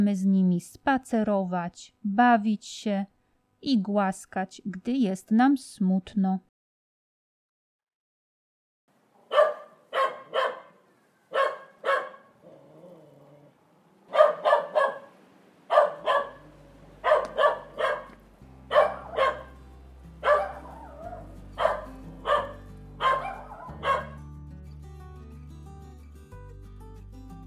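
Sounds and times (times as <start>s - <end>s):
speech: 0.0s - 6.5s
dog barking: 9.2s - 12.4s, 14.1s - 19.6s, 20.2s - 24.2s
soft music with sustained tones: 16.1s - 27.4s.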